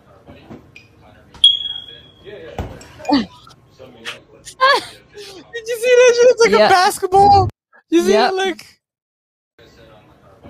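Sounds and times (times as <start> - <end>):
smoke detector high-pitched electronic beep: 1.4 - 2.2
speech: 3.1 - 3.4, 6.5 - 8.7.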